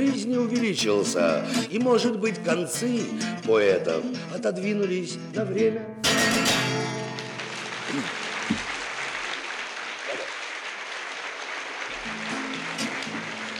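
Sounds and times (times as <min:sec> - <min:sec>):
speech: 0:00.0 - 0:06.4
audience applause: 0:06.2 - 0:13.5.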